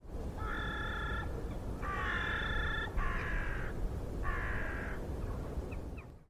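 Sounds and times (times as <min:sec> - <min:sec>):
bird cawing: 0:00.4 - 0:05.0.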